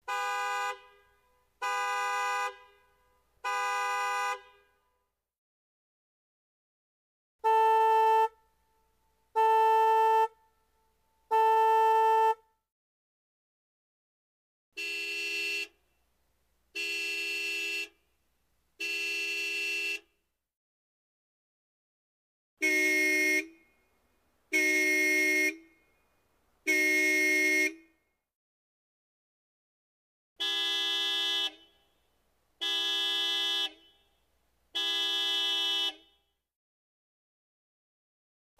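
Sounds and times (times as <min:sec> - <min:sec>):
medium American car horn: 0:00.0 - 0:05.0, 0:07.4 - 0:12.6, 0:14.8 - 0:16.0, 0:16.7 - 0:18.1, 0:18.8 - 0:20.2, 0:22.6 - 0:28.1, 0:30.4 - 0:36.4.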